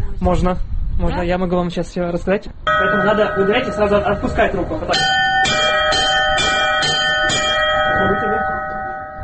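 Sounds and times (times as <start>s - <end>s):
speech: 0.2s - 5.2s
church bells struck: 2.7s - 9.2s.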